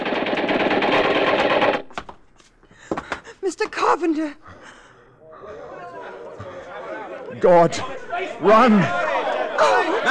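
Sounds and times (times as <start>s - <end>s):
machine-gun fire sound effect from a radio drama: 0.0s - 2.0s
sharp clicks and thuds: 0.0s - 2.2s
speech: 3.5s - 4.5s, 7.4s - 10.1s
laughter: 5.2s - 10.1s.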